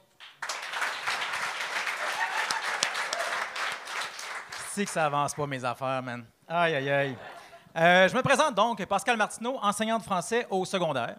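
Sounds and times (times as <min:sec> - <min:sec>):
crowd applauding: 0:00.1 - 0:05.6
speech: 0:04.8 - 0:11.1.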